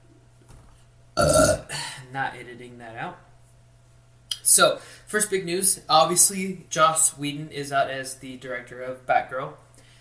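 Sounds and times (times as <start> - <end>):
burp: 1.2 - 1.8
speech: 2.1 - 3.3, 4.5 - 9.6.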